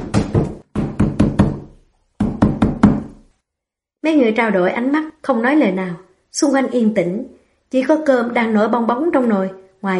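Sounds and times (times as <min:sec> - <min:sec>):
fist pounding on a wooden door at night: 0:00.0 - 0:03.2
speech: 0:04.0 - 0:09.9.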